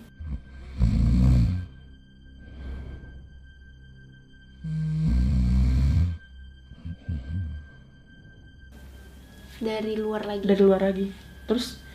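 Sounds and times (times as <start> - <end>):
rhythmic rough rumbling snoring: 0.0 - 1.8, 4.6 - 7.8
speech: 9.6 - 11.8.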